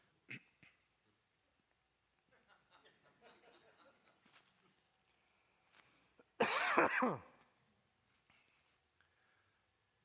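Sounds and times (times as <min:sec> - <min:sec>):
raspy throat clearing: 0:00.3 - 0:00.8, 0:06.4 - 0:07.3
laughter: 0:02.3 - 0:04.4
short rough cough: 0:06.4 - 0:07.3.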